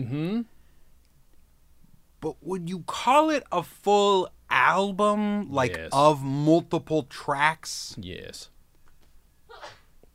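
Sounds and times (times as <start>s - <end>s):
speech: 0.0s - 0.6s, 2.2s - 8.5s
single short sneeze: 9.5s - 9.9s.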